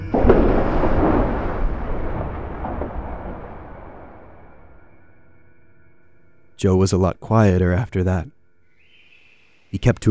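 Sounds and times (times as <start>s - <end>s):
heavy booming explosion of a lit fuse charge: 0.0s - 5.0s
speech: 6.6s - 8.4s, 9.7s - 10.0s.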